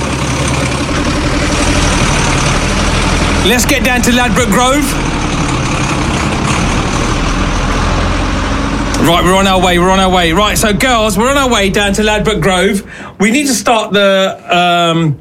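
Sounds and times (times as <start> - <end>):
heavy lorry carrying a sound system starting up and idling: 0.0 - 13.2
speech: 3.4 - 5.1, 9.0 - 15.2.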